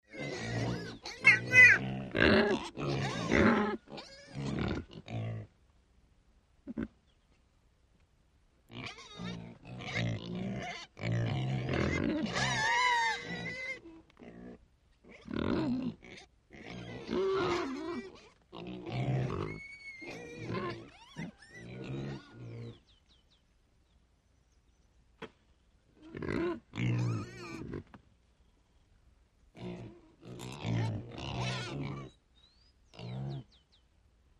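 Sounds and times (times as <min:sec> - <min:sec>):
pig family grunting: 0:00.1 - 0:05.5, 0:08.7 - 0:22.8, 0:26.0 - 0:27.9, 0:29.6 - 0:32.2.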